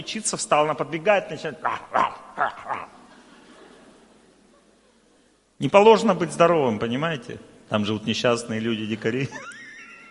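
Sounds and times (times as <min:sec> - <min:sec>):
speech: 0:00.0 - 0:02.6, 0:05.6 - 0:09.6
person imitating dog barking with yapping barks: 0:01.6 - 0:03.0.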